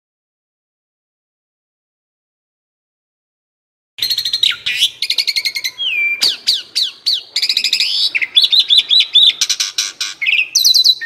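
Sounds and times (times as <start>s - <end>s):
Asian pied starling singing: 4.0s - 11.0s.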